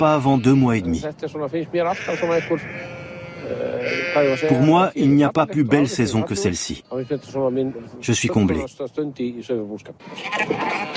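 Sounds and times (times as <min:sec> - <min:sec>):
ewes and lambs bleating outdoors in Iceland: 0:00.0 - 0:01.0, 0:01.8 - 0:04.8, 0:06.5 - 0:07.6
speech: 0:00.0 - 0:10.9.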